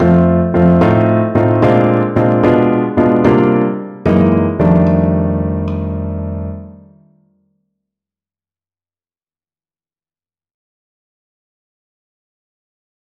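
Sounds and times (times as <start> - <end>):
blues endings: 0.0 - 7.0.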